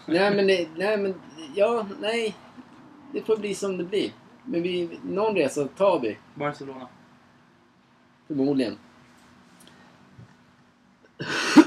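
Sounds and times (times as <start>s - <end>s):
speech: 0.0s - 2.5s, 3.1s - 7.0s, 8.3s - 8.9s
person clearing throat in a casual chat: 11.2s - 11.6s.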